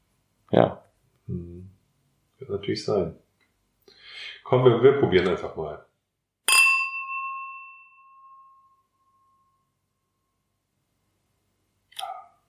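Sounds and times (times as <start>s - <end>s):
speech: 0.5s - 1.8s, 2.4s - 3.2s, 4.4s - 5.9s
two wine glasses clinking and ringing: 6.5s - 8.8s.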